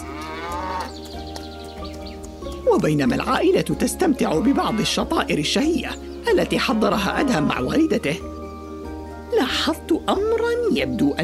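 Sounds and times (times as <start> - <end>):
cow mooing in a green meadow: 0.0 - 1.0, 4.2 - 5.3, 6.4 - 7.8
speech: 2.8 - 8.3, 9.5 - 11.2.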